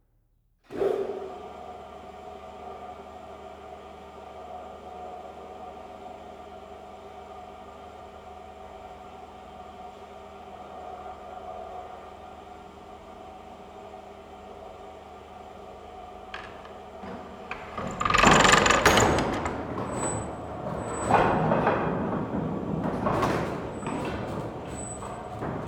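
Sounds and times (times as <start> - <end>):
electric belt drive laundry mangle running: 16.4 - 25.6.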